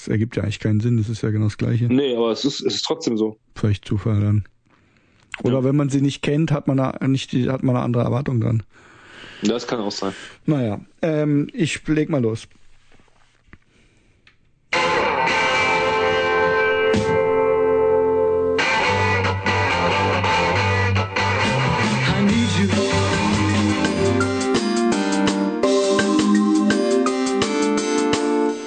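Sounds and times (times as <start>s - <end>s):
speech: 0.0s - 4.5s, 5.4s - 12.6s
1960s-style rock song by a full band: 14.7s - 28.6s
driving bass: 14.8s - 28.3s
bright chiming guitar chords: 14.8s - 28.6s.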